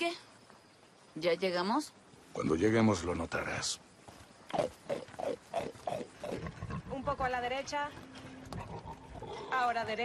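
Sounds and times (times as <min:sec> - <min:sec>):
speech: 0:01.2 - 0:03.9, 0:04.5 - 0:05.4, 0:07.1 - 0:10.0
pigs in a maze grunting and oinking: 0:04.5 - 0:07.2, 0:08.4 - 0:09.7.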